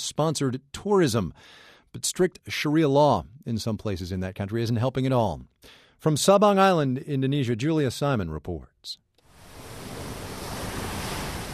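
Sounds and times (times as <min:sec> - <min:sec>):
speech: 0:00.1 - 0:09.0
ocean surf washing onto a beach on Sabang Island Indonesia: 0:09.3 - 0:11.5
windy hiss: 0:09.3 - 0:11.5.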